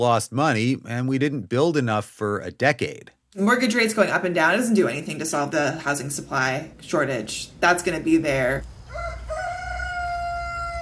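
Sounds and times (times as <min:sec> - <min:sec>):
speech: 0:00.0 - 0:09.1
rooster crowing by a chicken barn: 0:08.8 - 0:10.7.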